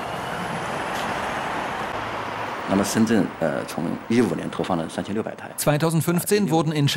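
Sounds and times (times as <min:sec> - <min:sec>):
electric bus pulling away with quiet motor whir: 0:00.0 - 0:05.1
broadband road rumble: 0:00.0 - 0:05.6
speech: 0:02.7 - 0:06.9.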